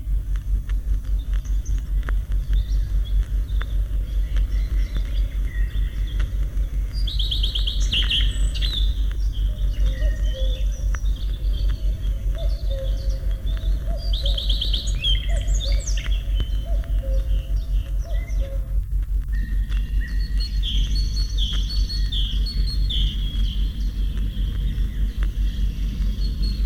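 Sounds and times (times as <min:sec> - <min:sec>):
common redstart singing warbling phrases: 0:00.0 - 0:26.6
constant low rumble of noise: 0:00.0 - 0:26.6.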